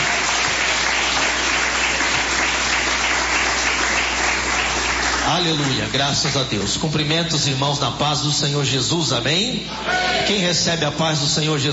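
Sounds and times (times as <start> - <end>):
large crowd clapping loudly: 0.0 - 7.4
speech: 5.4 - 11.7.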